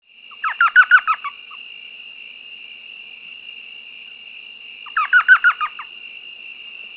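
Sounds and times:
elf owl chattering call: 0.3 - 1.4, 4.9 - 5.9.

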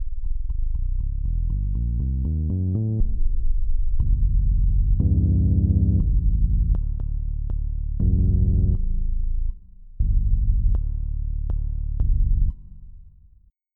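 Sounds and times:
sub bass: 0.0 - 13.4.

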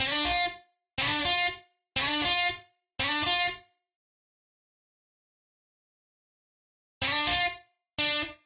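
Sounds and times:
lead guitar: 0.0 - 3.6, 7.0 - 8.4.

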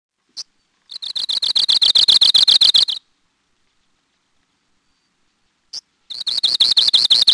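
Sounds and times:
Arctic Warbler sharp single call note: 0.4 - 3.0, 5.7 - 7.3
Arctic Warbler rapid dry trill: 0.9 - 3.0, 6.1 - 7.3.

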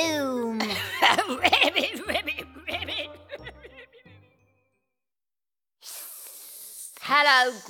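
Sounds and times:
person chuckling: 0.6 - 4.1
voice making a loud sharp snake-like hiss: 5.8 - 7.2
speech: 7.3 - 7.6.

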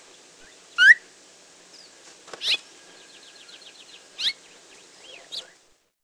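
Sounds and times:
phainopepla calls: 0.4 - 1.1, 2.4 - 5.6.

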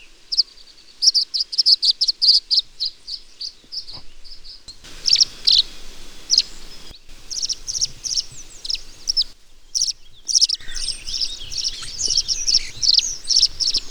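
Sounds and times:
tree swallow chirping and twittering: 4.7 - 13.9.

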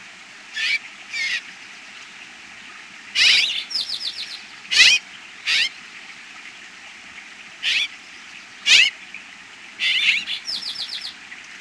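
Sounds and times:
bird calls in North America: 0.5 - 1.5, 3.2 - 6.0, 7.6 - 9.1, 9.8 - 11.2.

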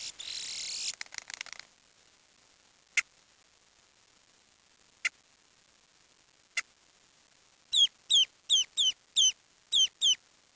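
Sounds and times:
bird giving sharp descending chirps: 0.0 - 1.0, 7.8 - 10.2.

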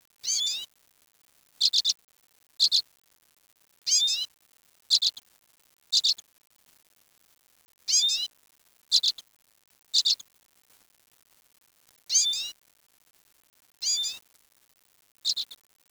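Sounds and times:
bird calls with high downslurred notes: 0.2 - 0.6, 1.6 - 2.0, 2.6 - 2.8, 3.9 - 4.3, 4.9 - 5.2, 5.9 - 6.2, 7.9 - 8.3, 8.9 - 9.2, 10.0 - 10.2, 12.1 - 12.5, 13.8 - 14.2, 15.2 - 15.6.

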